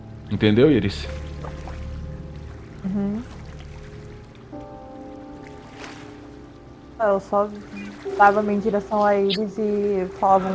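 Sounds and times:
flowing water of a spring in a cave: 0:00.0 - 0:10.5
speech: 0:00.3 - 0:01.6, 0:02.8 - 0:03.4, 0:07.0 - 0:10.5
faint tonal hum: 0:05.2 - 0:10.5.

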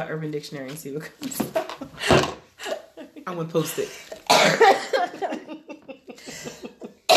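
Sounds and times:
speech: 0:00.0 - 0:02.3, 0:03.2 - 0:05.5
laughter: 0:01.6 - 0:07.1
harsh painful coughing fit: 0:04.3 - 0:05.2.

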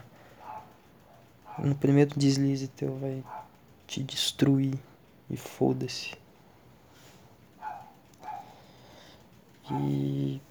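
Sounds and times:
low hum: 0:00.0 - 0:10.4
dog barking on the street: 0:00.4 - 0:01.8, 0:03.2 - 0:03.6, 0:07.6 - 0:08.6, 0:09.6 - 0:10.2
speech: 0:01.6 - 0:06.2, 0:09.7 - 0:10.4.

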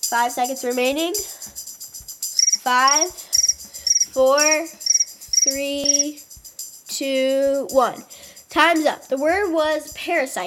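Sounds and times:
crickets chirping: 0:00.0 - 0:07.0
speech: 0:00.1 - 0:01.6, 0:02.6 - 0:03.4, 0:04.2 - 0:04.8, 0:05.4 - 0:06.3, 0:07.0 - 0:10.4
longer lower tonal calls: 0:02.4 - 0:06.1.

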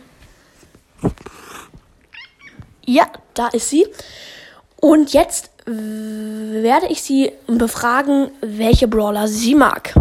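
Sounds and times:
cat meowing: 0:02.1 - 0:02.7
speech: 0:02.9 - 0:09.9.

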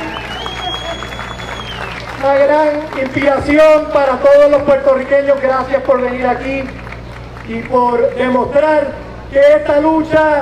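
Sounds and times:
thin high whistle-like tone: 0:00.0 - 0:02.0
large audience applauding: 0:00.0 - 0:04.2, 0:05.1 - 0:07.8
speech: 0:02.2 - 0:06.8, 0:07.5 - 0:10.3.

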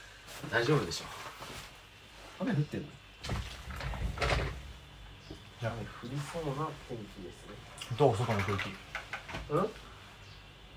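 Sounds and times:
speech: 0:00.4 - 0:01.5, 0:02.4 - 0:03.6, 0:05.6 - 0:09.9
window sliding open with a low rumbling drag: 0:03.2 - 0:04.7.

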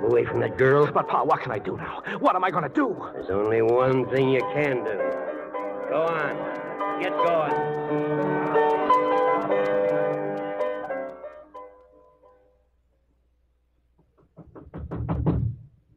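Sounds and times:
musical passage: 0:00.0 - 0:12.6, 0:14.4 - 0:15.9
speech: 0:00.1 - 0:05.1, 0:05.9 - 0:08.1
loud hard knocking on a door: 0:14.2 - 0:15.6.

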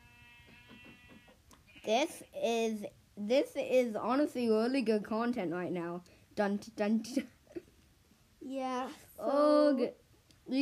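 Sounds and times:
sheep bleating in a video game: 0:00.0 - 0:02.0
speech: 0:01.9 - 0:07.4, 0:08.5 - 0:10.6.

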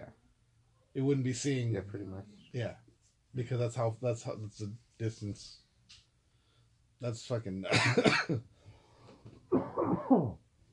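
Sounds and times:
speech: 0:01.0 - 0:06.0, 0:07.0 - 0:08.6, 0:09.5 - 0:10.4
person coughing: 0:07.7 - 0:08.4, 0:09.5 - 0:10.4.

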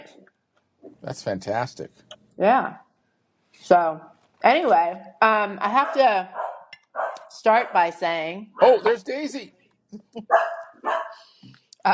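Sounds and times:
speech: 0:01.0 - 0:02.8, 0:03.6 - 0:06.4, 0:07.4 - 0:10.6
dog barking with a whiny edge: 0:05.8 - 0:07.8, 0:10.3 - 0:11.2.

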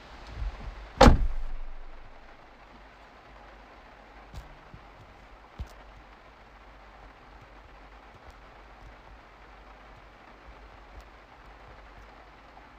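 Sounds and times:
faint rumbling ambience: 0:00.0 - 0:12.7
door slamming: 0:01.0 - 0:02.2.

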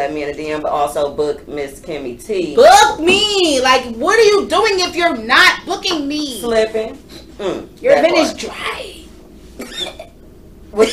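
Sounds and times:
speech: 0:00.0 - 0:08.9, 0:10.7 - 0:10.9
short raspy cough: 0:09.6 - 0:10.1.

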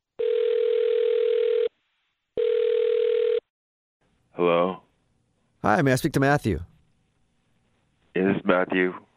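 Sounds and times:
telephone ringing tones: 0:00.2 - 0:01.7, 0:02.4 - 0:03.5
speech: 0:05.6 - 0:06.7, 0:08.5 - 0:09.0.

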